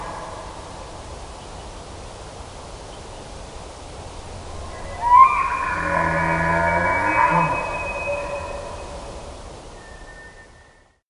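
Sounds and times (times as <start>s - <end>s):
steady hiss: 0.0s - 11.0s
moose long nasal moan call: 4.5s - 9.4s.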